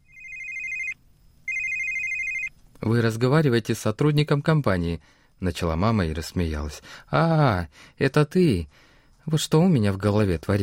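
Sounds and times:
telephone ringing with electronic trill: 0.0s - 2.6s
low hum: 0.0s - 10.6s
speech: 2.8s - 10.6s.

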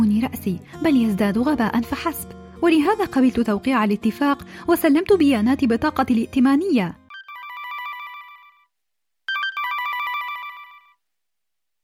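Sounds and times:
speech: 0.3s - 7.0s
telephone ringing with bright trilling electronic tone: 7.1s - 8.7s, 9.3s - 11.0s.

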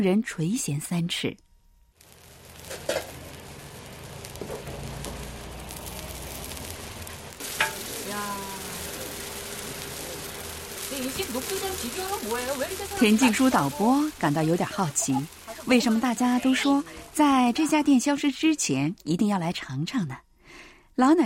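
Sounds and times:
speech: 0.0s - 1.4s, 11.0s - 21.2s
mung bean pancakes sizzling in a frying pan in a small restaurant kitchen: 2.0s - 18.0s.

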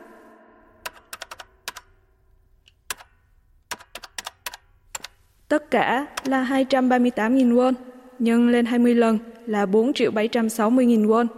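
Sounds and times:
male shop employee typing on a computer keyboard to calculate clothes prices: 0.8s - 2.0s, 2.7s - 5.2s, 6.2s - 6.4s
speech: 5.5s - 11.3s.

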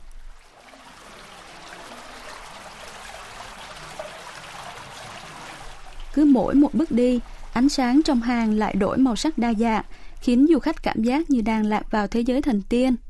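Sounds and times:
underground water trickling: 0.0s - 10.0s
speech: 6.2s - 13.0s.

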